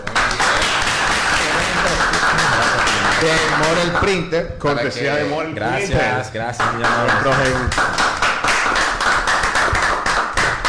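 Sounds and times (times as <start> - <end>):
crowd applauding the team: 0.0 - 4.1, 6.6 - 10.6
speech: 3.2 - 8.1.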